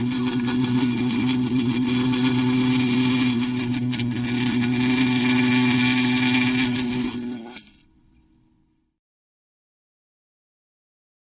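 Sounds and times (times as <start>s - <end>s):
bee buzzing in a steady low drone: 0.0s - 7.7s.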